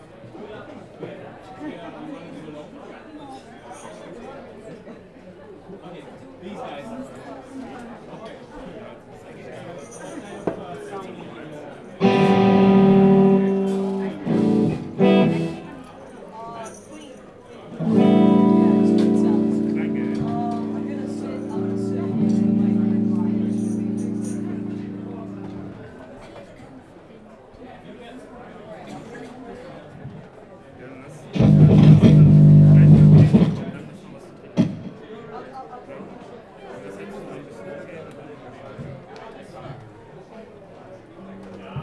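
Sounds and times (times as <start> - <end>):
instruments being tuned in a ruin pub: 12.0 - 15.8, 17.8 - 26.1, 31.3 - 34.0.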